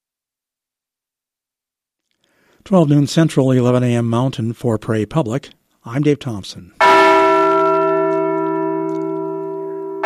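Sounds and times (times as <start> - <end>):
speech: 2.6 - 6.8
Liberty Bell replica ringing: 6.8 - 10.0.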